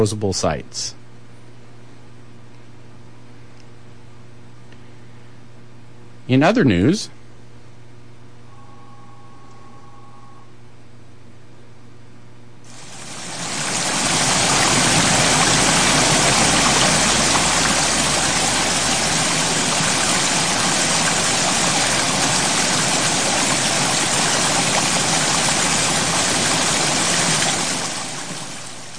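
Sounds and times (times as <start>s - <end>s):
speech: 0.0s - 1.0s, 6.3s - 7.2s
running water rushing: 12.7s - 28.9s.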